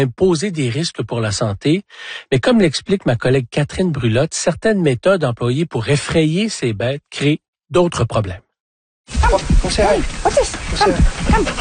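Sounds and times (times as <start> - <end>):
speech: 0.0 - 8.4, 9.1 - 11.6
10-year-old dog whimpering and giving high yelping barks: 10.8 - 11.6.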